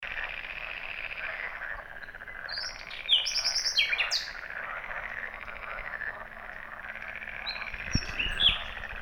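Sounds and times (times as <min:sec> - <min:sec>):
steady background noise: 0:00.0 - 0:08.9
common nightingale Luscinia megarhynchos song: 0:00.3 - 0:08.9.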